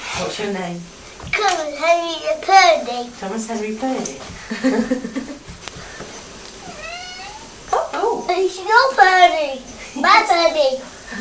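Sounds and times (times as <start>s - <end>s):
speech: 0.2s - 5.2s, 8.4s - 11.1s
laughter: 4.4s - 5.5s
person imitating a pet cat's whiny meow: 6.6s - 7.6s.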